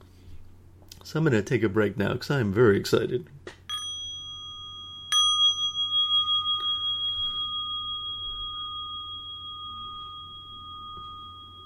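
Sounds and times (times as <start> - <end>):
speech: 1.1 - 3.4
low hum: 3.7 - 11.6
small bell struck: 3.7 - 11.6.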